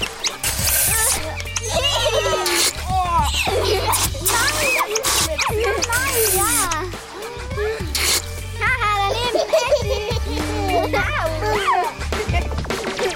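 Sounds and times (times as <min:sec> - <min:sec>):
water splashing and spraying in a water fight with water pistols: 0:00.0 - 0:01.3, 0:03.5 - 0:06.8
children chattering: 0:00.0 - 0:13.1
steady music bed: 0:00.0 - 0:13.1
children's excited shrieks: 0:00.7 - 0:08.0, 0:10.7 - 0:12.0
laughter: 0:01.4 - 0:08.0, 0:09.0 - 0:13.1.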